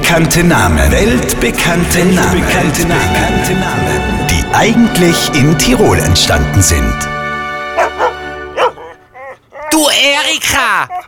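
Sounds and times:
speech: 0.1 - 7.2, 9.8 - 11.0
dog barking: 7.7 - 9.7
dog giving a brief whiny yelp: 7.7 - 9.9, 10.8 - 11.0.

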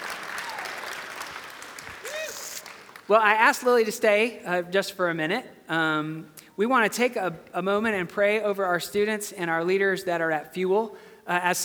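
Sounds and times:
scattered audience applause for children: 0.0 - 3.2
speech: 3.1 - 11.6.

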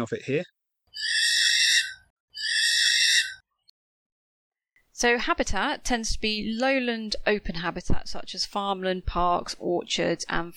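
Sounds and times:
speech: 0.0 - 1.2, 5.0 - 10.5
little owl calling: 0.9 - 3.4.

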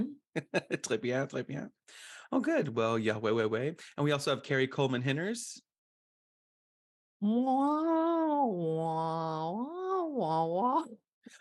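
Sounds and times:
speech: 0.0 - 5.7, 7.2 - 11.3
laughter: 0.4 - 1.0
woman imitating whale song with a vocal moan: 7.2 - 11.3.

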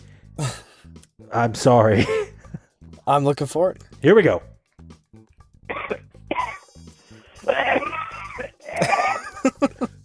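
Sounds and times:
person coughing in a voicemail message: 0.4 - 0.7, 5.7 - 6.7, 7.4 - 10.0
speech: 1.3 - 2.2, 3.1 - 4.5
laughter: 1.9 - 2.6, 7.5 - 9.9
person clearing throat in a voicemail message: 5.7 - 6.7, 7.4 - 10.0.

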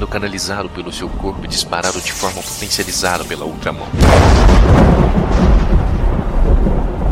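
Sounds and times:
speech: 0.0 - 5.6
loud thunder from a lightning strike crashing and rumbling: 3.9 - 7.0.

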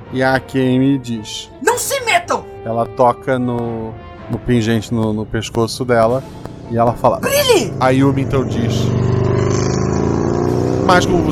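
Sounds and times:
speech: 0.1 - 9.1, 10.9 - 11.2
motorcycle engine roaring while passing by: 5.7 - 11.2.

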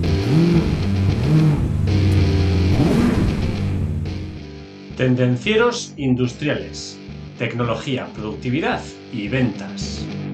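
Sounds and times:
car engine starting and revving: 0.0 - 4.6
speech: 5.0 - 10.2.

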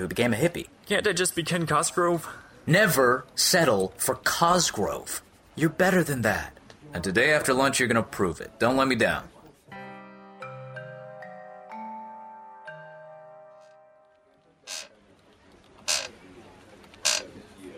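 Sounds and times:
speech: 0.0 - 9.3
chair creaking as someone shifts in it: 14.6 - 15.0, 15.7 - 16.2, 17.0 - 17.3.

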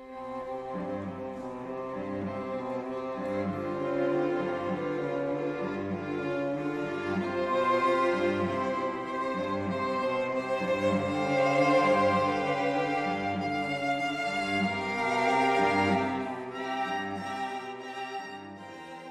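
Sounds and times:
string quartet of youth orchestra players playing a dissonant classical passage: 0.0 - 19.0.

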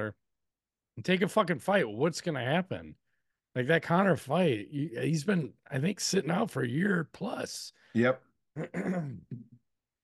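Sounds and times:
speech: 0.0 - 0.2, 1.0 - 3.0, 3.6 - 9.5
person coughing with a throat-clearing rasp: 8.6 - 9.6.

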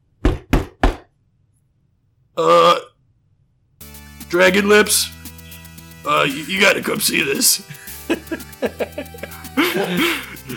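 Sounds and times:
knocking on a door: 0.2 - 1.1
speech: 2.4 - 2.8, 4.3 - 5.2, 6.0 - 9.2, 9.8 - 10.5
throaty burp-like sound: 2.4 - 3.0
laughter: 7.6 - 10.5.

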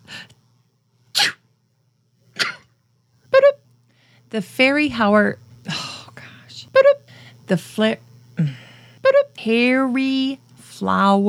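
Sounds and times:
person sneezing: 1.2 - 1.4, 2.4 - 2.6
speech: 4.3 - 5.4, 7.5 - 8.6, 9.4 - 11.2.

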